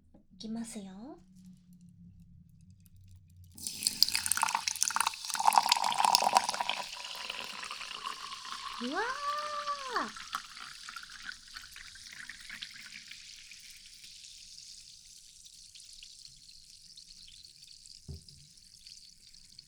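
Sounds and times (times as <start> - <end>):
speech: 0.4 - 1.3, 8.8 - 9.3
carbonated drink fizzing with a bright hiss of bubbles: 3.6 - 17.8.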